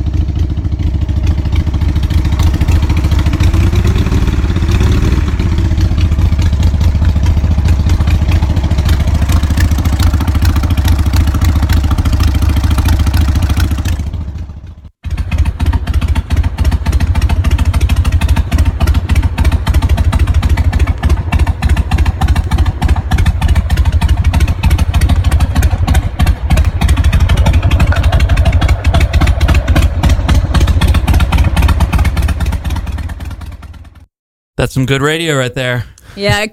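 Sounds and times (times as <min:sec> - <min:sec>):
2003 Harley-Davidson XL 1200 cc motorcycle engine idling: 0:00.0 - 0:34.1
speech: 0:34.7 - 0:36.5.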